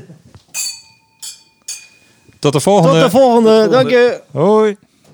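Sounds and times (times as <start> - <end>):
wine glasses clinking in a toast: 0.6 - 3.2
speech: 2.4 - 4.8.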